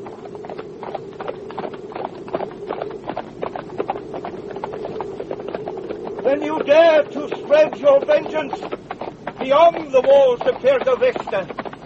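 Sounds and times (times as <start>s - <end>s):
hooves of ridden horses clip-clopping as riders set off: 0.0s - 11.8s
speech: 6.5s - 8.8s, 9.4s - 11.5s.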